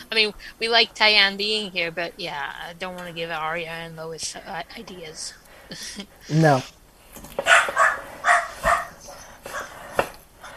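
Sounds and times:
speech: 0.1 - 7.8
dogs barking: 7.4 - 10.5.

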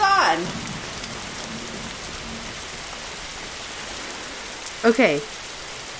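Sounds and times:
thunder: 0.0 - 4.6
heavy rain drumming on surfaces in a sudden storm: 0.0 - 5.9
speech: 0.4 - 0.6, 4.8 - 5.4.

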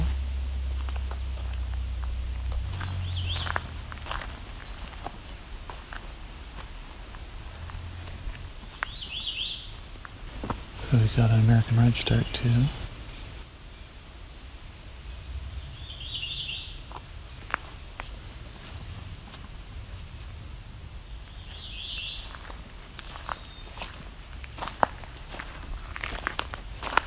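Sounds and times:
crunching footsteps: 0.0 - 13.0, 16.8 - 20.4, 21.3 - 27.0
faint outdoor ambience: 0.0 - 27.0
hairy woodpecker piercing high call: 2.8 - 3.7, 8.8 - 9.9, 15.0 - 16.9, 21.3 - 22.3
speech: 10.9 - 12.8.

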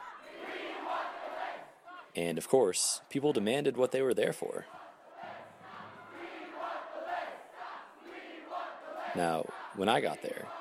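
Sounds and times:
large crowd chanting in unison: 0.0 - 2.2, 4.5 - 10.6
speech: 2.2 - 4.8, 9.2 - 10.6.

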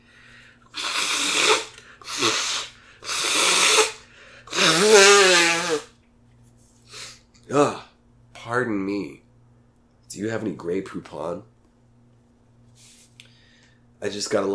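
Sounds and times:
nose blowing: 0.7 - 5.9
short sniffs: 0.7 - 5.9, 6.7 - 7.2, 12.8 - 13.8
speech: 10.2 - 11.6, 14.0 - 14.5.

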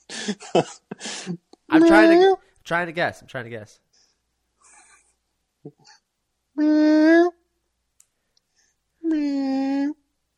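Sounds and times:
speech: 0.2 - 3.8, 6.6 - 7.4, 9.1 - 10.0
person imitating a hungry cat meowing: 1.7 - 2.4, 6.6 - 7.4, 9.0 - 10.0
faint clicks: 8.0 - 8.5.

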